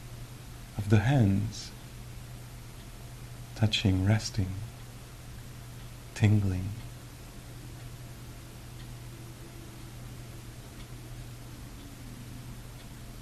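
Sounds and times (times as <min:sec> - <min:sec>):
steady low hum and hiss: 0:00.0 - 0:13.1
speech: 0:00.9 - 0:01.8, 0:03.6 - 0:04.7, 0:06.2 - 0:06.8
clock ticking: 0:05.8 - 0:13.1.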